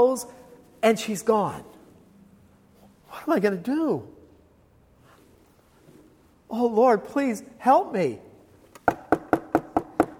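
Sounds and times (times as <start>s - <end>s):
speech: 0.0s - 1.8s, 3.1s - 4.2s, 6.5s - 8.3s
firm knocks on a wooden front door: 8.9s - 10.1s.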